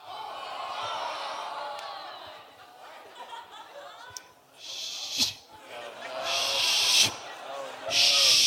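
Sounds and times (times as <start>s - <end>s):
several people chattering: 0.0s - 8.4s
several people laughing: 0.0s - 8.4s
person shushing: 4.6s - 5.4s, 6.2s - 7.2s, 7.9s - 8.4s.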